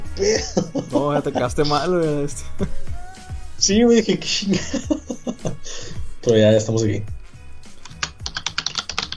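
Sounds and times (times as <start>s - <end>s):
laughter: 0.2s - 1.9s, 4.3s - 5.7s
speech: 0.2s - 2.9s, 3.6s - 7.2s
typing on a computer keyboard: 7.8s - 9.1s.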